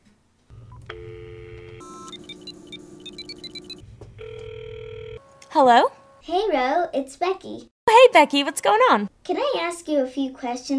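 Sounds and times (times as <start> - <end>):
steady phone dial tone: 0.6 - 5.3
phone ringing tone: 0.6 - 6.2
phone keypad beeps dialing a number: 0.7 - 4.5
speech: 5.6 - 10.7.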